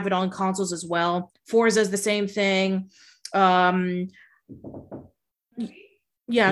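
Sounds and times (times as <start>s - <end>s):
speech: 0.0s - 6.5s
knocks on a door: 4.5s - 5.2s.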